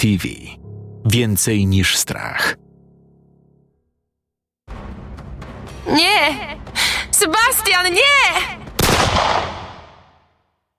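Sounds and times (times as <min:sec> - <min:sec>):
speech: 0:00.0 - 0:02.6, 0:05.9 - 0:06.6, 0:07.2 - 0:09.5
gunshot with echo: 0:08.8 - 0:10.2.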